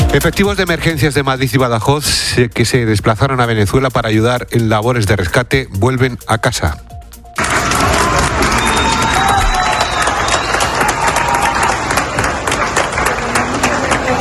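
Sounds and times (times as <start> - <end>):
speech: 0.1 - 6.9
crowd clapping at an airport welcoming returning emergency rescue teams: 7.4 - 14.1.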